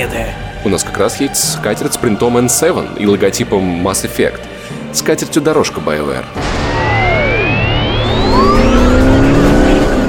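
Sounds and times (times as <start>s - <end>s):
speech: 0.0s - 6.6s
truck engine roar: 6.4s - 10.0s
vehicles speeding by: 7.0s - 10.0s.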